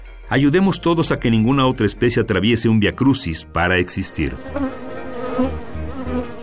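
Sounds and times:
speech: 0:00.3 - 0:05.6
Bombus affinis bumblebee buzzing: 0:04.2 - 0:06.4.

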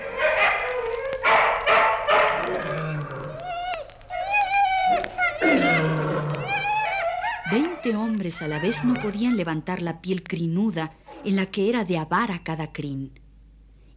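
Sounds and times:
several dogs snarling and growling: 0:00.0 - 0:09.3
speech: 0:07.9 - 0:13.2.

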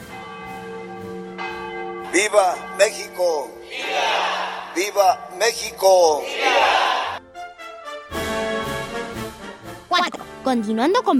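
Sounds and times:
large church bell ringing: 0:00.0 - 0:03.8, 0:04.6 - 0:06.1
speech: 0:02.1 - 0:06.9, 0:10.0 - 0:11.1.

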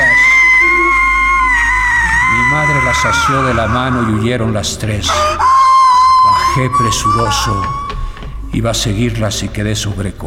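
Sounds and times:
women screaming in terror: 0:00.0 - 0:04.4, 0:05.1 - 0:08.2
speech: 0:03.0 - 0:05.4, 0:06.6 - 0:07.8, 0:08.5 - 0:10.2.

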